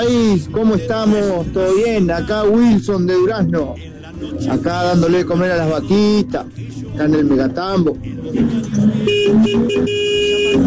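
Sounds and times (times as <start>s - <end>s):
speech: 0.0s - 10.6s
car horn honking in the morning: 8.7s - 10.6s.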